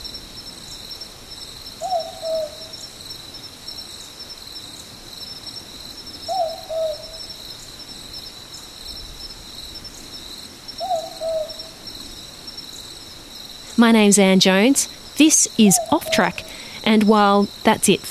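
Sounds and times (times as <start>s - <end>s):
high-pitched chorus of crickets: 0.0s - 18.0s
southern boobook owl giving two-note boo-book call: 1.8s - 2.7s, 6.3s - 7.2s, 10.8s - 11.8s, 14.9s - 17.1s
speech: 13.8s - 18.0s.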